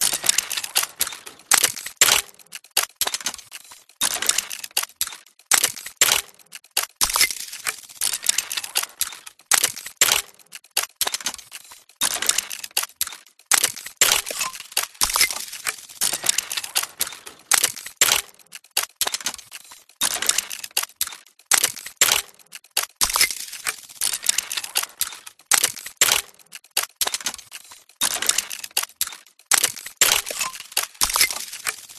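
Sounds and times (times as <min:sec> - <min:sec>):
steampunk mechanical loop: 0:00.0 - 0:31.9.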